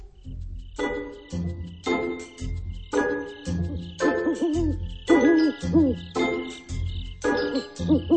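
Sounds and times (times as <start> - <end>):
rhythmic musical backing with deep pulsing bass: 0.0 - 8.1
owl hooting at night: 2.9 - 8.1.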